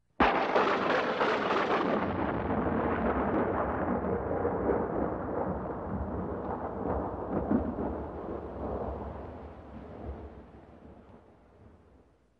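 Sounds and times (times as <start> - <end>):
scary lightning bolt crack: 0.2 - 9.0.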